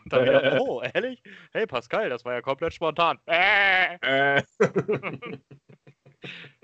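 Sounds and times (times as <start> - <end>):
rapid choppy vocal sounds: 0.0 - 1.5, 2.7 - 6.6
person imitating a goat's bleat: 0.1 - 0.8, 3.3 - 5.1
laughter: 0.1 - 1.1, 3.8 - 6.6
speech: 0.1 - 5.6.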